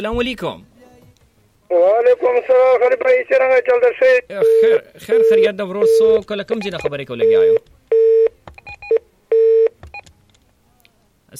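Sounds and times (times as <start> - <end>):
speech: 0.0 - 0.7, 1.7 - 7.7
electronic telephone tones after a dropped call: 4.4 - 10.0.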